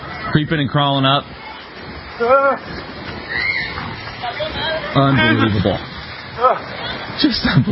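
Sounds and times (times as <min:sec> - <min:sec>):
steady crowd-like murmur: 0:00.0 - 0:07.7
speech: 0:00.3 - 0:01.4, 0:02.2 - 0:03.4, 0:04.5 - 0:07.7
fainter shrieks: 0:03.3 - 0:03.8
short high-pitched scream: 0:03.3 - 0:03.8.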